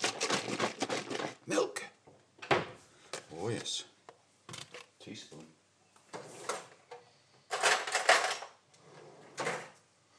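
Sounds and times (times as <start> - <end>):
items rattling in fridge door shelves: 0.0 - 1.6, 6.1 - 9.8
kitchen drawer sliding open: 8.8 - 9.8.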